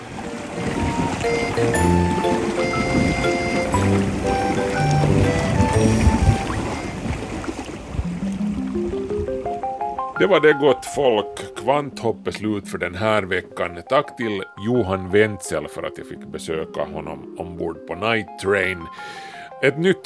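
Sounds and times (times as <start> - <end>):
sustained tonal notes: 0.0 - 8.3
water streaming past a sailing boat's hull: 0.0 - 9.5
rising run of tones: 0.1 - 8.6
speech: 10.2 - 20.0.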